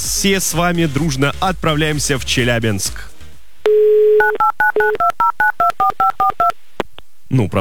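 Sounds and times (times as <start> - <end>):
speech: 0.2 - 3.1, 3.7 - 6.6, 7.3 - 7.5
phone line's steady dial tone: 3.7 - 6.6.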